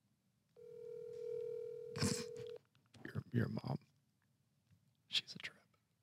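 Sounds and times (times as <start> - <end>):
steady electronic phone ringback tone: 0.6 - 2.6
speech: 3.3 - 3.9.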